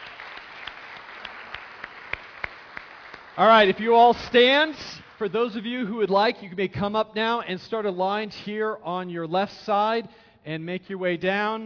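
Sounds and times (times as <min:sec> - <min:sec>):
audience applauding new church members: 0:00.0 - 0:05.8
speech: 0:03.4 - 0:11.6.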